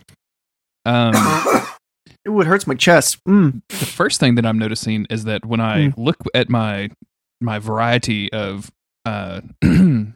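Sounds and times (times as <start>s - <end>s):
speech: 0.8s - 1.6s, 2.4s - 10.1s
loud throaty cough: 1.1s - 1.8s, 9.6s - 10.1s.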